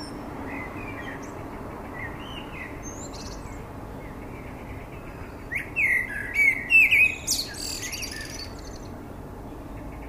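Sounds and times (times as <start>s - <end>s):
common blackbird Turdus merula singing fluted whistles: 0.0s - 10.0s.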